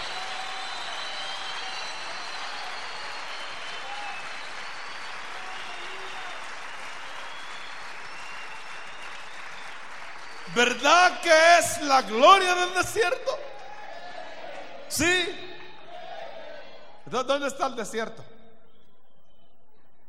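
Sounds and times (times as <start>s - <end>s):
audience applauding: 0.0s - 15.7s
speech: 10.6s - 13.5s, 14.9s - 15.4s, 17.1s - 18.3s.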